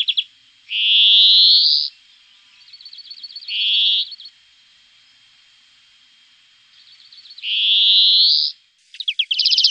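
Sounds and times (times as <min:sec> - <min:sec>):
European greenfinch song: 0:00.0 - 0:04.4, 0:06.6 - 0:09.6.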